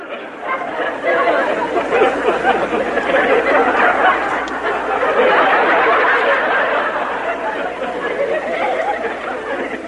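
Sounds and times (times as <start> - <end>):
background laughter: 0.0 - 9.8.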